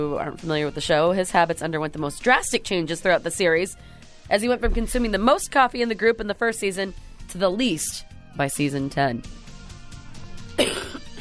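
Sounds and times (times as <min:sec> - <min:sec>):
speech: 0:00.0 - 0:09.4
single sharp cough: 0:10.6 - 0:11.1.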